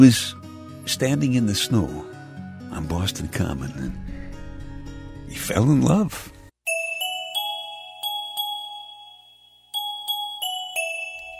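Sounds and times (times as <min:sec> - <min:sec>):
speech: 0:00.0 - 0:04.1, 0:05.3 - 0:06.4
bells ringing and tinkling: 0:06.7 - 0:11.3.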